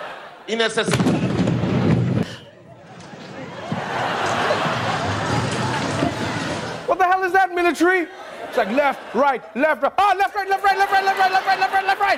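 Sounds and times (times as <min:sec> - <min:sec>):
crowd noise: 0:00.0 - 0:12.1
speech: 0:00.5 - 0:01.3, 0:07.7 - 0:12.1
loud explosion booming during a military parade attack: 0:00.9 - 0:02.4
laughter: 0:02.2 - 0:12.1.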